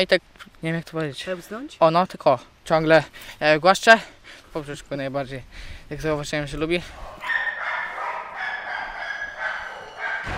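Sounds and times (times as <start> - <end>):
speech: 0.0 - 7.1
many dogs barking and yipping at an animal shelter: 6.8 - 10.3.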